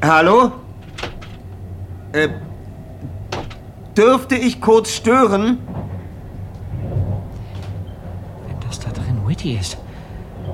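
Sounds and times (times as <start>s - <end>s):
speech: 0.0s - 0.6s, 2.1s - 2.5s, 4.0s - 5.7s, 9.4s - 9.8s
low room rumble: 0.0s - 10.5s
knocking on a wooden cabin door: 3.0s - 3.6s.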